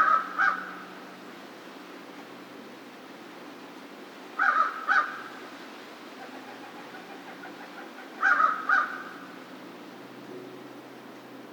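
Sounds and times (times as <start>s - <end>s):
American crow cawing: 0.0s - 0.8s, 4.4s - 5.3s, 7.8s - 9.4s.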